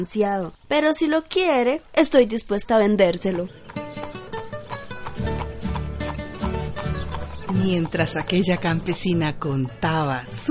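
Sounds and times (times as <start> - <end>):
speech: 0.0 - 3.8, 7.6 - 10.4
horse trotting with hooves clip-clopping: 3.2 - 10.4.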